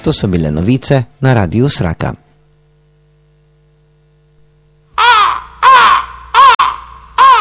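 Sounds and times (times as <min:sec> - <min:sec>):
speech: 0:00.0 - 0:02.2
birds screeching: 0:05.0 - 0:07.3.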